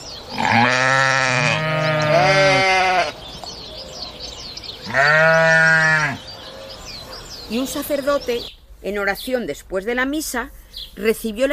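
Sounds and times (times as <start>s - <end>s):
sheep and goats bleating: 0.3s - 3.2s, 4.8s - 6.2s
speech: 7.7s - 11.5s.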